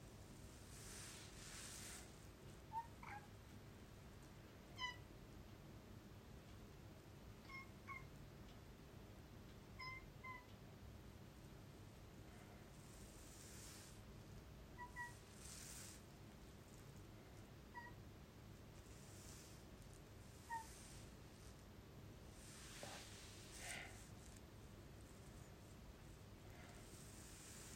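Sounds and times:
steady low rumble and hiss: 0.0 - 27.7
pet cat making short soft chirps and meows: 4.7 - 5.1, 7.4 - 8.1, 9.8 - 10.5, 14.7 - 15.8, 17.7 - 18.0, 20.3 - 21.0.

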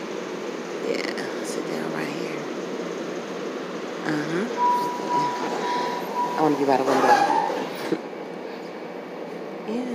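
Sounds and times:
rumbling interior noise of a moving passenger train: 0.0 - 9.6
speech: 4.1 - 7.4
thin high squeal: 4.6 - 8.0.

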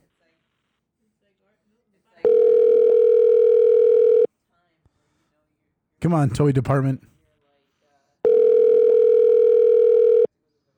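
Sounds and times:
steady ringback tone over a phone line: 2.3 - 4.3, 8.3 - 10.3
speech: 6.0 - 7.2.

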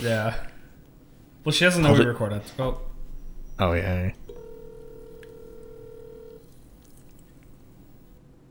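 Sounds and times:
speech: 0.0 - 0.6, 1.4 - 2.9, 3.6 - 4.2
faint noise: 0.0 - 8.4
electronic ringback tone from an outgoing phone call: 4.2 - 6.5.

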